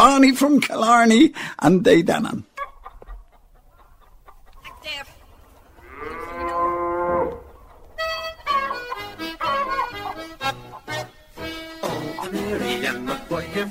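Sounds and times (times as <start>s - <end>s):
speech: 0.1s - 2.5s
farm animal calls and cries: 2.4s - 13.2s
cow mooing: 5.7s - 10.4s.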